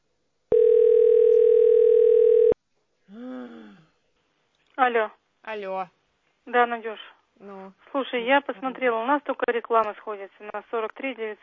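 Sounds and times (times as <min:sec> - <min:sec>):
telephone call tone: 0:00.5 - 0:02.6
speech: 0:04.8 - 0:11.4.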